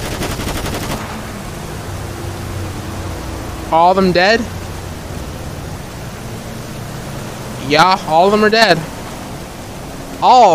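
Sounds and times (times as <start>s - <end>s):
rapid gunfire from a police video game: 0.0s - 1.4s
speech: 3.7s - 4.6s, 7.7s - 8.9s, 10.2s - 10.5s.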